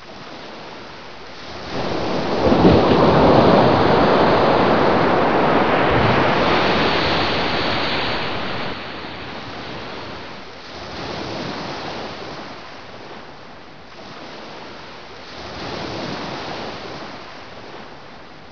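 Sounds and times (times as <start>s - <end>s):
sea waves: 0.0s - 18.4s.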